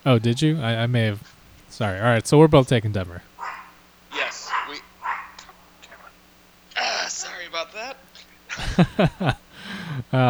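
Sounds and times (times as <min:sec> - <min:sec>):
speech: 0:00.0 - 0:03.3, 0:08.8 - 0:09.4, 0:10.0 - 0:10.2
small dog barking: 0:03.3 - 0:09.3
laughter: 0:03.4 - 0:10.2.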